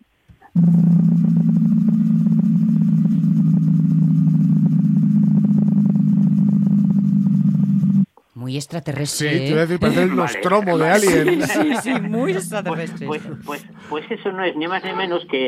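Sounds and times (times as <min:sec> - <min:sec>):
speech: 0:00.6 - 0:01.0, 0:08.5 - 0:15.4
low-frequency tone isolated from a damaged bearing: 0:00.6 - 0:08.1, 0:10.9 - 0:14.1
laughter: 0:09.4 - 0:15.2.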